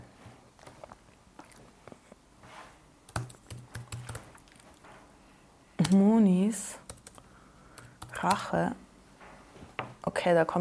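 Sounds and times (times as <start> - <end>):
typing a search on computer keyboard: 3.1 - 4.4, 6.8 - 7.2, 7.8 - 8.5
speech: 5.9 - 6.9, 8.2 - 8.8, 10.1 - 10.5.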